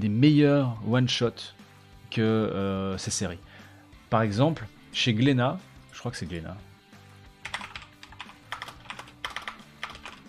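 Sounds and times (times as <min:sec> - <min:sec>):
speech: 0:00.0 - 0:03.5, 0:04.1 - 0:06.7
rapid computer keyboard typing with clicky keystrokes: 0:07.4 - 0:10.2.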